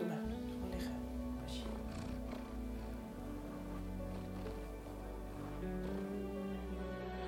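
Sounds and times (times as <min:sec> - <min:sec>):
cat purring: 0:00.2 - 0:07.1.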